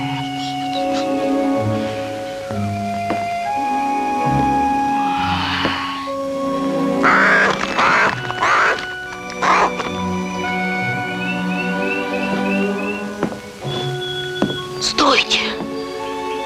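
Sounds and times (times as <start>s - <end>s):
birds singing and chirping: 0.0s - 6.2s, 6.9s - 16.4s
harsh cawing: 5.0s - 10.0s.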